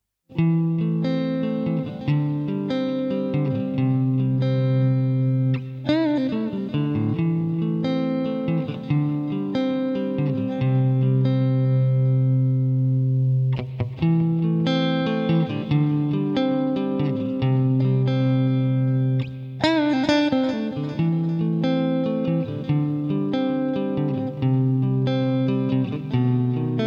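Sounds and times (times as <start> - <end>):
electric guitar strumming and picking clean sustained chords: 0.3 - 26.8.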